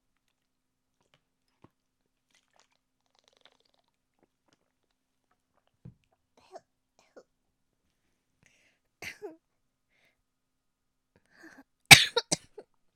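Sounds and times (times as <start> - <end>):
faint mouth noises: 1.0 - 4.8
dry harsh coughs from a very dry throat: 11.9 - 12.5.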